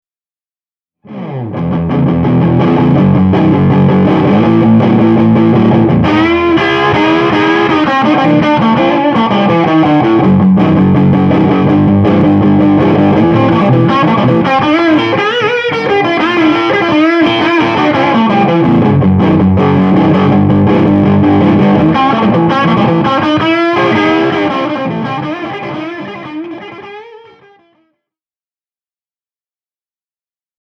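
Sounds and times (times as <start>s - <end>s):
Les Paul electric guitar with clean low-gain fat tone: 1.0s - 28.0s.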